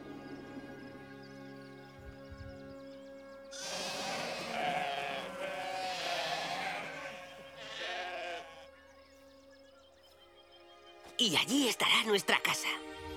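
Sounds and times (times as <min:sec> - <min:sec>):
sheep bleating on a farm: 0:03.5 - 0:08.8
speech: 0:11.2 - 0:13.0.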